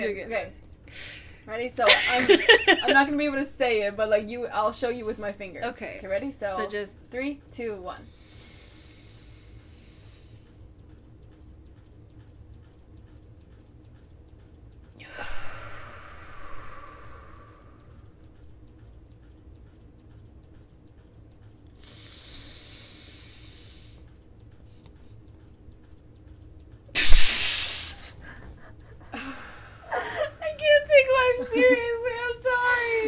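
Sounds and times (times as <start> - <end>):
speech: 0.0 - 8.2
faint steady ticking: 0.0 - 27.3, 28.0 - 33.0
slow deliberate breathing in a box breathing exercise: 0.8 - 1.4, 8.1 - 10.6, 15.0 - 18.3, 21.8 - 25.2, 27.0 - 30.3
laughter: 1.9 - 3.0, 29.9 - 32.0.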